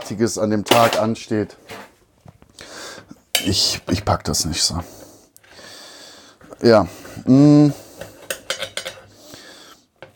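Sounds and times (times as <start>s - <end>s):
speech: 0.1s - 1.9s, 3.4s - 5.0s, 6.6s - 7.8s
cutlery scraping on dishware while cutting a freshly baked pizza: 8.0s - 9.1s.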